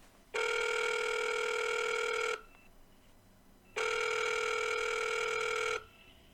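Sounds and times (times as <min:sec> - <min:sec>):
telephone ringing in long electronic bursts: 0:00.4 - 0:02.4, 0:03.8 - 0:05.8.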